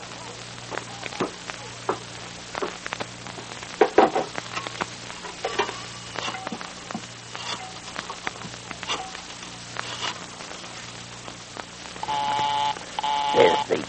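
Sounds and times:
crackly hiss: 0:00.0 - 0:13.8
bright telephone tones: 0:12.0 - 0:13.8.

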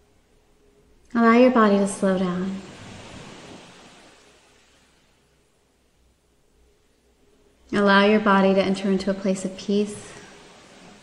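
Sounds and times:
speech: 0:01.1 - 0:02.6, 0:07.7 - 0:10.2
ocean waves breaking on a shore: 0:01.2 - 0:06.1, 0:07.6 - 0:11.0.

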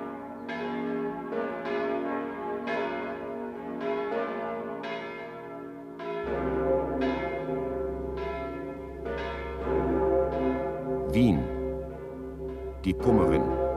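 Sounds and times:
two church bells ringing: 0:00.0 - 0:13.7
deeper bell tone: 0:06.0 - 0:13.7
speech: 0:11.2 - 0:11.5, 0:12.9 - 0:13.6.

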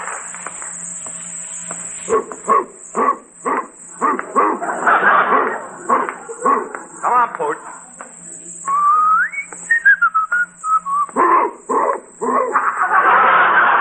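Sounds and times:
Great Dane barking: 0:02.1 - 0:06.8, 0:11.2 - 0:12.7
laughter: 0:04.0 - 0:07.9, 0:12.2 - 0:13.7
steady whistle-like tone: 0:08.7 - 0:11.2.

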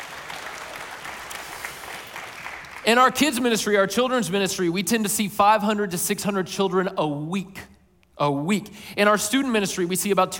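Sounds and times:
church congregation applauding celebrating baptisms: 0:00.0 - 0:03.2
speech: 0:02.8 - 0:10.3.

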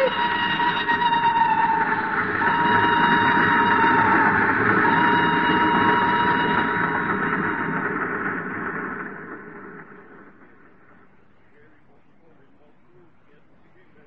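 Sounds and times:
metallic whine of train: 0:00.0 - 0:14.0
train moving fast along the rails: 0:00.0 - 0:14.0.

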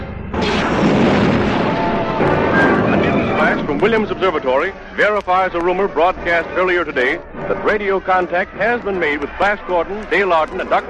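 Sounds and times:
laser weapons firing in a space battle: 0:00.4 - 0:04.3
speech: 0:03.7 - 0:10.8.

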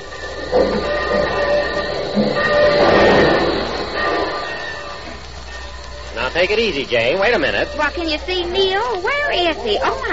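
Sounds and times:
faint high train squeals: 0:00.0 - 0:10.1
train rumbling: 0:00.0 - 0:10.1
speech: 0:06.4 - 0:10.1.

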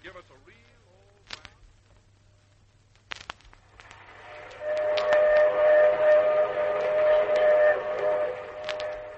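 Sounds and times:
steam train low constant rumble: 0:02.8 - 0:09.1
sharp clicks: 0:02.9 - 0:05.5
steam train whistle: 0:04.0 - 0:09.1.

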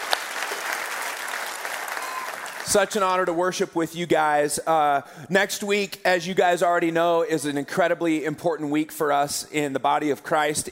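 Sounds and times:
audience applauding: 0:00.0 - 0:03.2
speech: 0:02.7 - 0:10.7.

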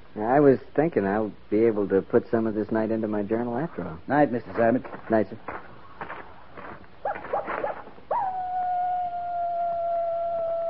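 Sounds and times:
speech: 0:00.2 - 0:05.7
coyote yipping and howling at night: 0:07.0 - 0:10.6.

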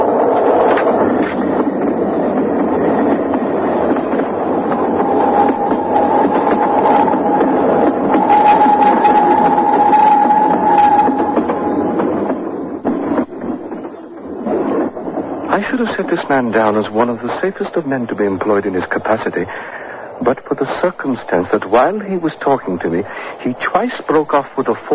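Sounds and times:
train rumbling past: 0:00.0 - 0:24.9
high metallic whine or squeal: 0:04.9 - 0:12.2
speech: 0:16.3 - 0:19.6, 0:20.3 - 0:24.9.

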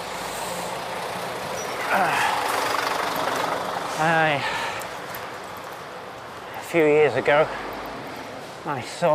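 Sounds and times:
heavy skip lorry engine rumbling during three-point turn: 0:00.0 - 0:06.7
street noise: 0:00.0 - 0:09.1
speech: 0:01.9 - 0:02.2, 0:04.0 - 0:04.6, 0:06.7 - 0:07.7, 0:08.6 - 0:09.1.

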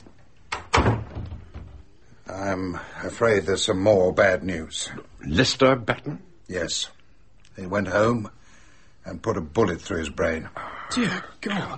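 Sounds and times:
door being shut with a knock and heavy thud: 0:00.5 - 0:02.0
speech: 0:02.4 - 0:07.0, 0:07.6 - 0:08.4, 0:09.0 - 0:11.7.

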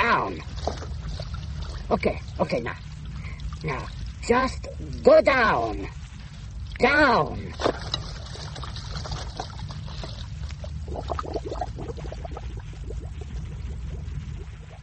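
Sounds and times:
hot water trickling and gurgling during a diving operation: 0:00.0 - 0:14.8
steady low rumble: 0:00.0 - 0:14.8
speech: 0:00.2 - 0:00.9, 0:01.9 - 0:02.9, 0:03.6 - 0:06.0, 0:06.8 - 0:08.0, 0:10.9 - 0:11.7.

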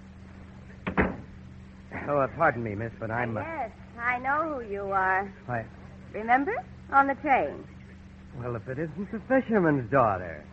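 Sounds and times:
office door closing: 0:00.8 - 0:01.4
speech: 0:02.1 - 0:10.5.

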